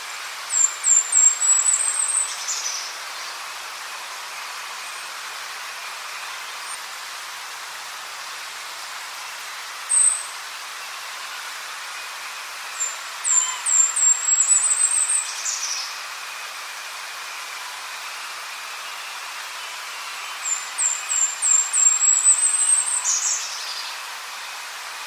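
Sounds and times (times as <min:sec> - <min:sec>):
golden-crowned kinglet song: 0:00.0 - 0:05.2, 0:09.8 - 0:11.0, 0:12.7 - 0:16.2, 0:18.8 - 0:24.1
steady soft hiss: 0:00.0 - 0:25.0.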